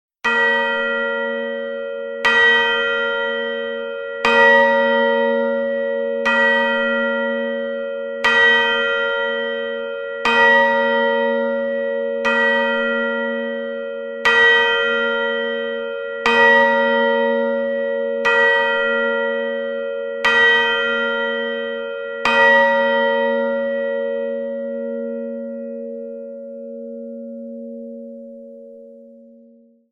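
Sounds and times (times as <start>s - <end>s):
midnight clock chimes: 0.3s - 25.8s.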